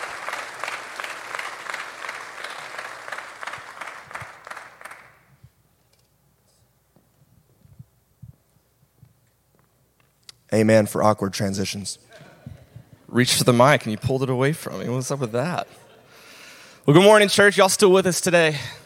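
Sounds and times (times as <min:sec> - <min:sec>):
crowd applauding: 0:00.0 - 0:05.4
speech: 0:10.5 - 0:12.2, 0:13.2 - 0:15.8, 0:16.8 - 0:18.8.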